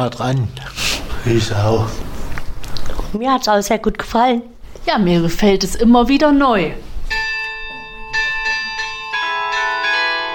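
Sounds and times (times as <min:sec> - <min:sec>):
speech: 0:00.0 - 0:02.1, 0:03.1 - 0:06.9
glockenspiel chiming a bright melody: 0:07.1 - 0:10.3.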